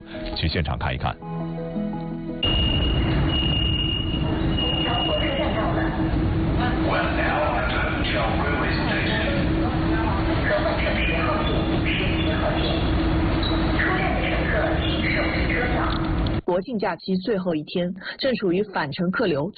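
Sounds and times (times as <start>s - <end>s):
speech: 0.4s - 1.3s, 16.5s - 19.5s
many indistinct voices inside a crowded railway station: 2.4s - 16.3s.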